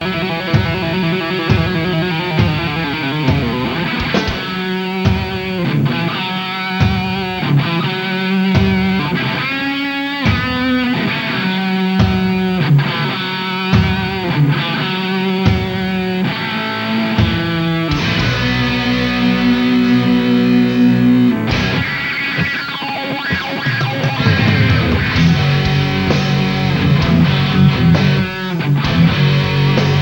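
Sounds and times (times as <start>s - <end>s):
guitar solo: 0.0s - 30.0s.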